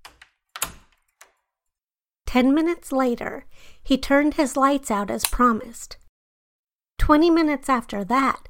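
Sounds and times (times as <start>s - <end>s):
light clicks of the door handle: 0.0s - 1.4s
speech: 2.3s - 6.0s, 7.1s - 8.4s.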